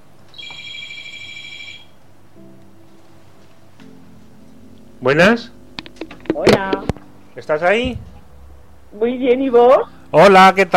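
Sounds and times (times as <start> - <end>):
telephone ringing for an incoming call: 0.4 - 2.0
speech: 5.0 - 5.6, 7.4 - 8.1, 8.9 - 10.7.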